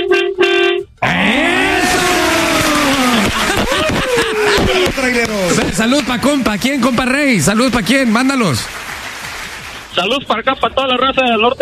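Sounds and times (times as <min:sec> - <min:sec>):
truck horn honking: 0:00.0 - 0:01.4
laughter: 0:01.0 - 0:08.1
speech: 0:05.8 - 0:08.8, 0:10.0 - 0:11.5.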